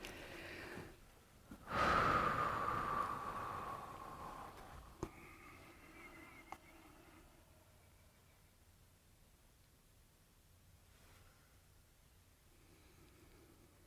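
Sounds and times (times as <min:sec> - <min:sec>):
group taking a deep breath: 0:00.0 - 0:01.0, 0:01.6 - 0:07.6.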